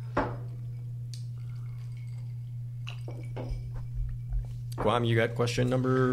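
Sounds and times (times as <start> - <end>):
steady low electrical hum: 0.0 - 6.1
glasses clinking in a toast: 1.4 - 5.0
speech: 3.1 - 3.7, 4.8 - 6.1.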